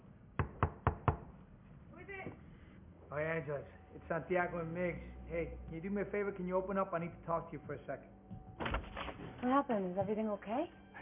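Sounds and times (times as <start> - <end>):
knocking on a door: 0.4 - 1.3
speech: 3.1 - 8.2, 9.4 - 11.0.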